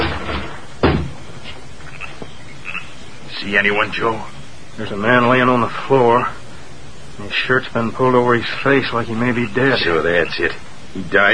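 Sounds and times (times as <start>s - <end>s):
wooden cabin door kicked open: 0.0s - 1.2s
quiet hissy background: 0.0s - 11.3s
speech: 3.4s - 6.4s, 7.2s - 11.3s.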